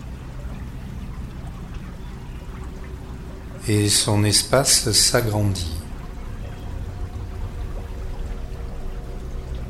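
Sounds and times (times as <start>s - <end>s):
flowing river water: 0.0s - 9.6s
speech: 3.6s - 5.8s.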